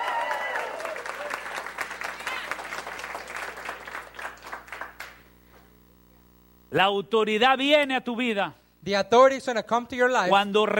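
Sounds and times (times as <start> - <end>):
congregation shouting for joy during a church service: 0.0 - 1.5
congregation applauding during a church service: 0.0 - 5.3
speech: 6.7 - 10.7.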